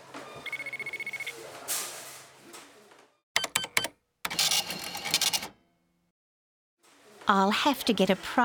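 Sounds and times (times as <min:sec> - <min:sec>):
shop checkout scanner beeping: 0:00.3 - 0:01.4, 0:03.4 - 0:05.6
checkout register clattering: 0:03.4 - 0:05.6
speech: 0:07.3 - 0:08.4.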